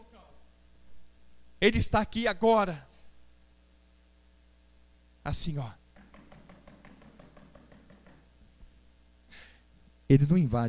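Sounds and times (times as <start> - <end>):
low steady hum: 0.0 - 10.6
speech: 1.6 - 2.9, 5.2 - 5.8, 10.1 - 10.6
knocking on a door: 6.0 - 8.5.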